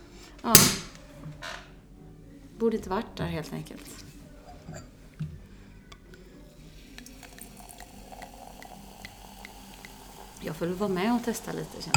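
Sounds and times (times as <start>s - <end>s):
speech: 0.4s - 0.9s, 2.6s - 4.1s, 10.6s - 11.9s
fizzy crackle of champagne bubbles: 4.8s - 11.9s
champagne pouring from a bottle wrapped in a small sock: 6.2s - 11.9s.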